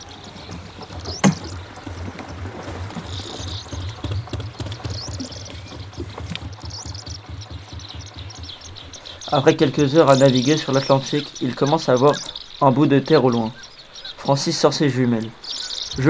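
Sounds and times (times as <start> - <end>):
faint bird chirps: 0.0 - 16.0
rowboat oars sloshing and splashing water: 0.0 - 16.0
speech: 9.3 - 16.0.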